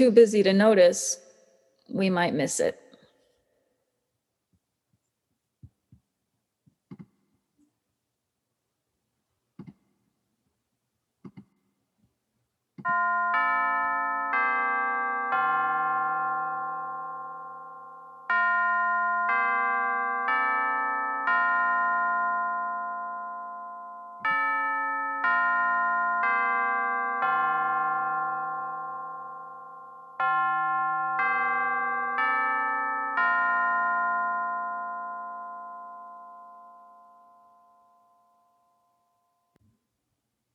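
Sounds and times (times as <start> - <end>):
speech: 0.0 - 1.2, 1.9 - 2.8
doorbell chiming a multi-note melody: 12.9 - 39.6.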